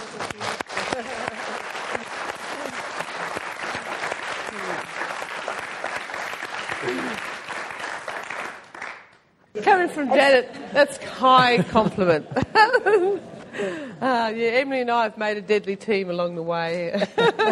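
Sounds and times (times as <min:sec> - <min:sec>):
room full of people applauding: 0:00.0 - 0:09.2
laughter: 0:00.8 - 0:02.0, 0:09.7 - 0:13.9, 0:17.0 - 0:17.5
speech: 0:09.9 - 0:17.5.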